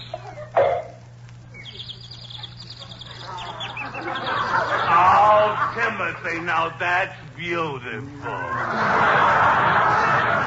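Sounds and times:
bird chirping: 0.0 - 5.1
rustling noise: 0.0 - 10.4
laughter: 2.4 - 6.8, 8.0 - 10.4
speech: 6.0 - 10.4.

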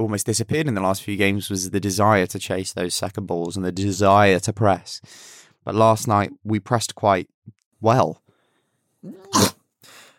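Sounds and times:
speech: 0.0 - 8.2, 9.0 - 9.5
person sneezing: 9.0 - 10.1.

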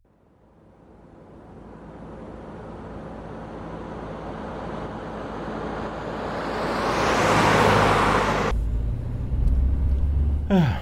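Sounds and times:
car tire and engine roar on a road: 0.4 - 10.8
car interior rumble: 8.3 - 10.8.

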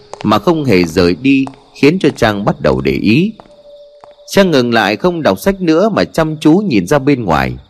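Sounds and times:
hard clattering footsteps outside: 0.0 - 2.6, 3.3 - 4.4
speech: 0.2 - 3.5, 4.3 - 7.6.

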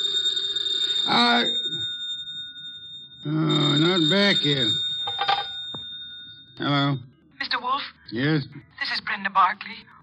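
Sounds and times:
telephone bell ringing: 0.0 - 7.2
speech: 1.1 - 1.7, 4.0 - 4.9, 6.6 - 7.1, 8.1 - 10.0.

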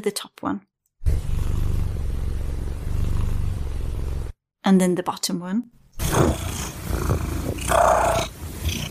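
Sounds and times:
speech: 0.0 - 1.3, 4.6 - 6.5
domestic cat purring with trill and inhalation: 1.0 - 4.3, 6.0 - 8.8.

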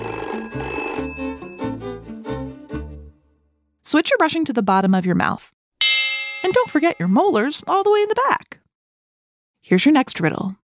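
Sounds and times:
telephone ringing: 0.0 - 2.1
speech: 3.9 - 5.6, 6.4 - 8.5, 9.6 - 10.6.

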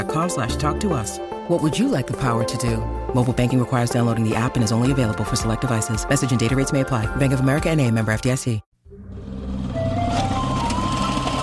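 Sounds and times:
speech: 0.0 - 9.0
truck engine rumble while spreading rock salt to de-ice a road: 8.9 - 11.4.

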